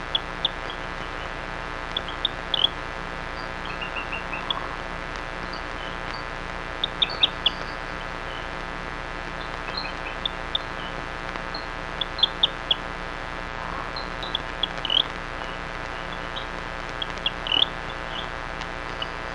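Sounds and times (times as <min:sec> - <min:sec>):
Rio Grande chirping frog Syrrhophus calling with high chirps: 0:00.0 - 0:19.3
continuous low droning hum: 0:00.0 - 0:19.3.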